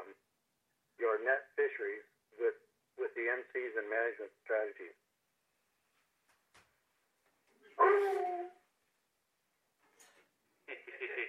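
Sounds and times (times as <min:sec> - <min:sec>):
speech: 0:01.2 - 0:05.0, 0:07.8 - 0:08.6
dog yipping: 0:07.8 - 0:08.6
dog whining: 0:07.8 - 0:08.7.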